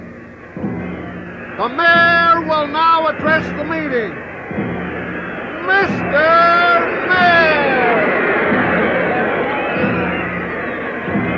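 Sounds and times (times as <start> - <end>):
crowd effect: 0.0 - 11.3.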